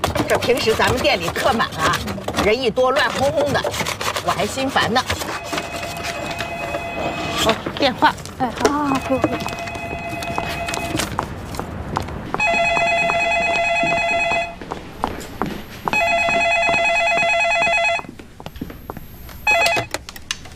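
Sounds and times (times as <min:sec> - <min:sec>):
people talking in a café: 0:00.2 - 0:05.3, 0:05.8 - 0:10.8
telephone ringing in a café: 0:05.3 - 0:07.7, 0:08.8 - 0:11.1, 0:12.4 - 0:14.6, 0:15.9 - 0:18.2, 0:19.4 - 0:20.0.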